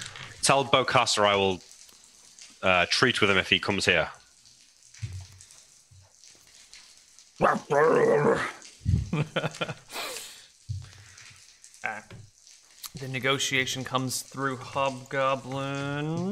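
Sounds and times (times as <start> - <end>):
hiss: 0.0 - 16.2
speech: 0.5 - 1.7, 2.6 - 4.2, 7.4 - 10.2, 13.0 - 16.2
person imitating snarling hyena-like creatures: 7.4 - 9.2.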